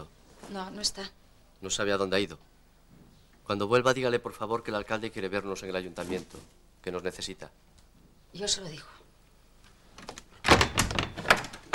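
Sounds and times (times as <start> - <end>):
speech: 0.5 - 2.5, 3.5 - 7.7, 8.3 - 9.0
door being closed with clattering knocking thuds: 10.4 - 11.7.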